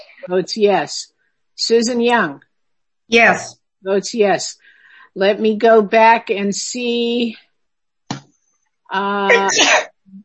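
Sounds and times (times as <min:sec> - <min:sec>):
speech: 0:00.2 - 0:02.5, 0:03.1 - 0:04.6, 0:05.2 - 0:07.5, 0:08.9 - 0:10.2
loud sneeze during a meeting call: 0:09.3 - 0:09.9.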